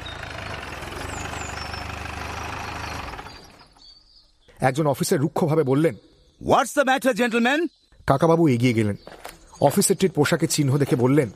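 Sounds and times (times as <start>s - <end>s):
military jeep engine idling: 0.0s - 3.8s
speech: 4.6s - 11.3s.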